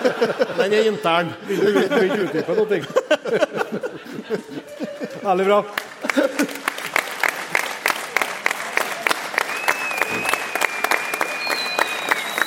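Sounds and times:
laughter: 0:00.0 - 0:07.0
speech: 0:00.2 - 0:04.5, 0:05.3 - 0:05.8
audience applause: 0:04.5 - 0:12.4
faint whistle-like tone: 0:09.5 - 0:12.4.

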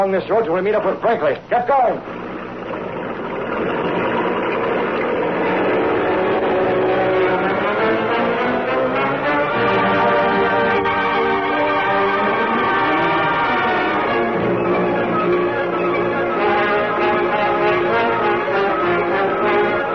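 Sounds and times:
speech: 0:00.0 - 0:02.3
sedan engine starting and revving as it pulls away: 0:02.0 - 0:19.9.

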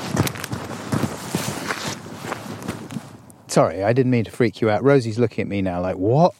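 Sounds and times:
running footsteps outdoors: 0:00.0 - 0:03.2
breezy hiss: 0:00.0 - 0:06.3
speech: 0:03.6 - 0:06.3.

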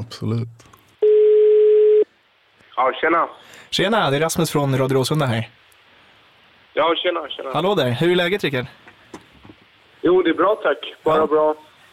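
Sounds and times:
speech: 0:00.1 - 0:00.7, 0:02.8 - 0:05.6, 0:06.8 - 0:08.8, 0:10.0 - 0:11.7
telephone ringback tone while calling: 0:01.0 - 0:02.0.

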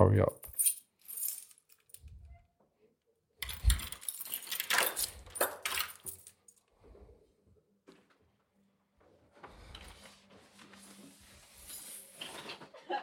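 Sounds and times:
speech: 0:00.0 - 0:00.8
keys being shaken and jangling: 0:00.4 - 0:02.2, 0:03.4 - 0:06.6.

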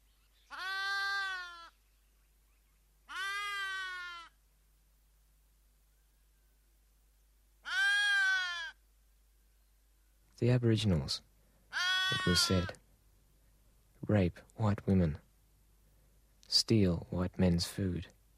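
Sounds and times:
sheep bleating: 0:00.5 - 0:01.7, 0:03.1 - 0:04.3, 0:07.6 - 0:08.8, 0:11.7 - 0:12.8
speech: 0:10.4 - 0:11.3, 0:12.1 - 0:12.8, 0:14.0 - 0:15.2, 0:16.5 - 0:18.2.

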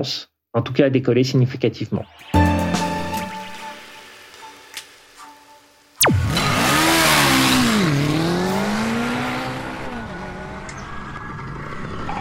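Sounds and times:
speech: 0:00.0 - 0:02.8
small single-cylinder four-stroke 72 cc motorcycle engine starting and revving: 0:06.0 - 0:12.1.

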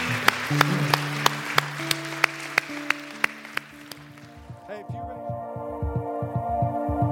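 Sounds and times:
audience applauding: 0:00.0 - 0:04.8
sustained keyboard chords: 0:00.0 - 0:07.0.

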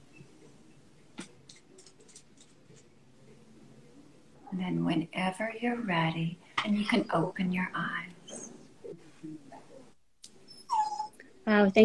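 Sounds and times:
speech: 0:04.6 - 0:08.1, 0:11.5 - 0:11.8
dog whimpering: 0:10.5 - 0:11.2.

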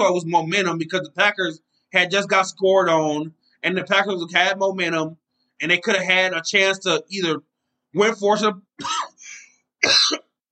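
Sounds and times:
speech: 0:00.0 - 0:09.1, 0:09.8 - 0:10.4
man coughing: 0:08.8 - 0:10.4.

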